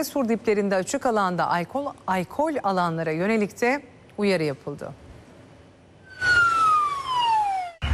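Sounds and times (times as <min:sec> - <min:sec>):
speech: 0:00.0 - 0:05.0
police drone loudspeaker falling siren-like whoop: 0:06.1 - 0:07.8.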